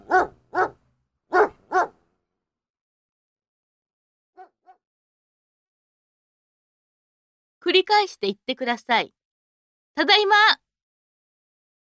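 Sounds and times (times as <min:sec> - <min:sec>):
dog barking: 0:00.0 - 0:02.0, 0:04.4 - 0:04.8
speech: 0:00.1 - 0:00.4, 0:07.7 - 0:09.2, 0:10.0 - 0:10.6.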